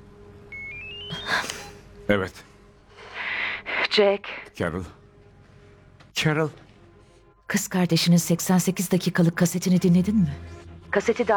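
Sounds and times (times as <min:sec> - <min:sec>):
electronic phone ringtone beeps: 0:00.5 - 0:01.8
speech: 0:02.1 - 0:02.5, 0:03.9 - 0:05.0, 0:06.2 - 0:06.6, 0:07.5 - 0:11.3.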